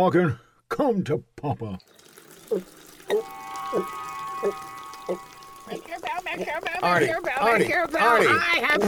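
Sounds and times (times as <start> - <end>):
speech: 0.0 - 8.8
coffee pouring from an urn spigot: 1.7 - 8.8.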